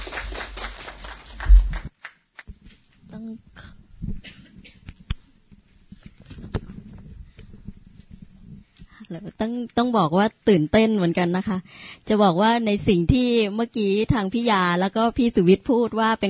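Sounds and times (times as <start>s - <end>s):
audience applause for two speakers: 0.0s - 2.5s
scattered claps and taps: 0.0s - 2.8s
speech: 9.1s - 16.2s.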